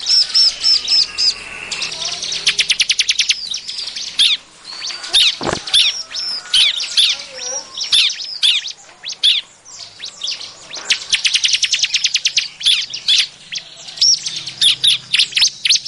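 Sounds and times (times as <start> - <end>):
bar-winged prinia calling as a lure for catching birds: 0.0 - 15.8
short low thump: 5.4 - 5.8.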